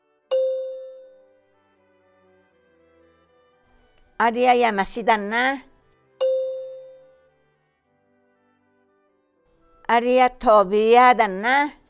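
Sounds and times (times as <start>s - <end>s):
bright chime signaling a language learner's turn: 0.3s - 1.3s, 6.2s - 7.2s
speech: 4.2s - 5.7s, 9.9s - 11.8s.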